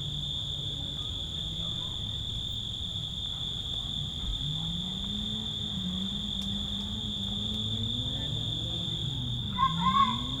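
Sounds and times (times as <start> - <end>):
loud insects droning in nature on Zakynthos: 0.2 - 10.3.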